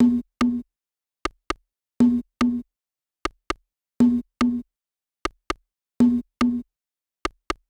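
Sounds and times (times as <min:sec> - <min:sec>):
percussion loop: 0:00.0 - 0:07.6.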